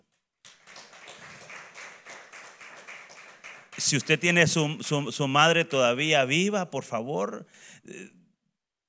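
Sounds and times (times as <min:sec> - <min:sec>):
audience applauding for all mothers: 0:00.4 - 0:05.2
speech: 0:03.8 - 0:08.2.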